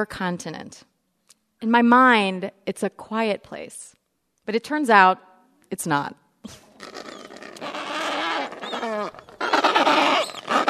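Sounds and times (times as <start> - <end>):
speech: 0.0 - 0.9, 1.6 - 7.0
Adelie penguin colony braying and squawking: 6.8 - 10.6.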